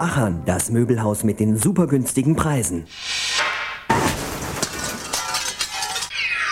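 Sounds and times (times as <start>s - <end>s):
speech: 0.2s - 3.2s
car windshield glass breaking: 3.9s - 6.4s
glass fragments rattling and clinking: 4.2s - 6.4s.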